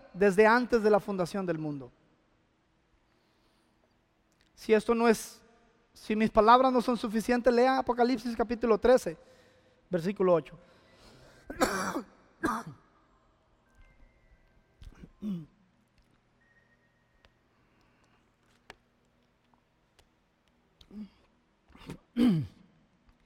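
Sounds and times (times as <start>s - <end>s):
speech: 0.2s - 2.0s, 4.6s - 5.4s, 6.0s - 10.7s, 11.5s - 12.8s, 15.2s - 15.5s, 22.2s - 22.5s
throat clearing: 11.5s - 12.8s, 15.0s - 15.6s, 20.9s - 22.7s
person coughing: 11.5s - 12.9s, 15.2s - 15.6s, 21.8s - 22.7s.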